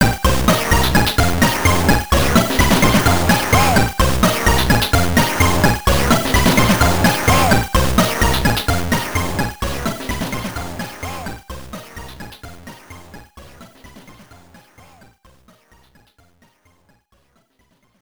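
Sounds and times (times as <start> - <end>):
carillon chords: 0.0 - 12.2.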